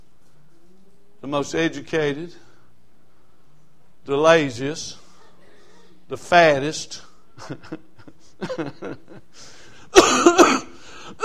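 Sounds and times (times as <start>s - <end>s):
speech: 1.2s - 2.5s, 4.0s - 5.0s, 6.1s - 11.2s
laughter: 7.4s - 9.4s
person coughing: 9.9s - 11.2s.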